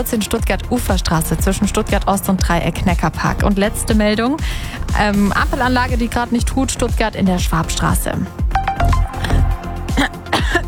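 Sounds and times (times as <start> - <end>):
speech: 0.0 - 9.3, 10.0 - 10.6
person coughing after choking on something swallowed: 9.2 - 10.6
throat clearing: 9.9 - 10.6.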